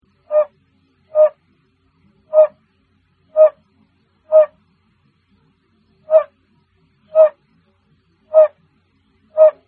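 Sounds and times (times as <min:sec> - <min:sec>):
Bombina calling: 0:00.2 - 0:01.4, 0:02.3 - 0:02.6, 0:03.3 - 0:03.6, 0:04.3 - 0:04.6, 0:06.0 - 0:06.3, 0:07.1 - 0:07.4, 0:08.3 - 0:08.6, 0:09.3 - 0:09.6.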